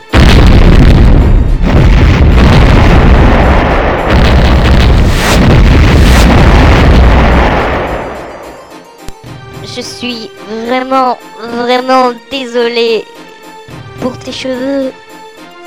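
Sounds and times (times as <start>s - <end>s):
loud explosion with crackling rumble: 0.1s - 8.7s
speech: 10.0s - 13.3s, 14.0s - 15.1s.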